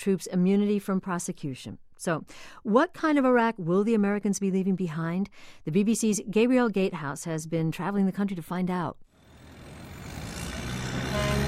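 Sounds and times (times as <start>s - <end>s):
speech: 0.0s - 9.1s
dozens of armored military vehicles driving onto a base in Iraq: 9.3s - 11.4s.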